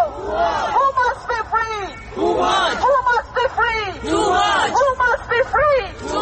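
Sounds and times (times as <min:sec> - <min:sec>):
large crowd of protesters chanting in unison: 0:00.1 - 0:01.1, 0:02.1 - 0:03.2, 0:03.9 - 0:06.2.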